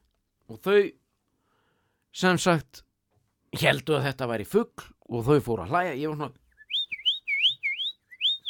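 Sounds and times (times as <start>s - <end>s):
speech: 0.5s - 1.0s, 2.1s - 2.8s, 3.5s - 6.4s
person whistling in imitation of a small bird: 6.5s - 8.4s.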